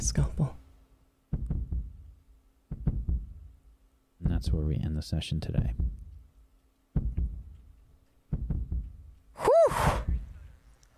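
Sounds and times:
heartbeat thumps: 1.3 - 4.8, 5.4 - 10.6
speech: 4.4 - 6.0.

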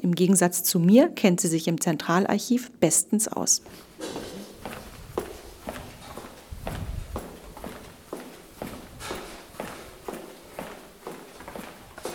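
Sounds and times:
speech: 0.1 - 4.3
woman's footsteps walking briskly on a hard floor through an archive: 3.6 - 12.1.

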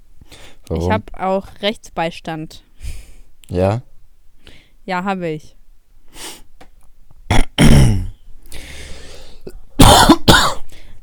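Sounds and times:
speech: 0.7 - 3.9, 4.8 - 5.6
person coughing harshly close to the microphone: 7.3 - 8.2, 9.8 - 10.7.

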